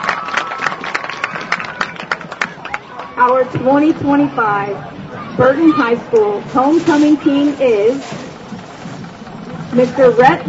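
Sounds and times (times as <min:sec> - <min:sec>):
crowd applauding: 0:00.0 - 0:03.6
speech: 0:03.2 - 0:08.2, 0:09.8 - 0:10.4.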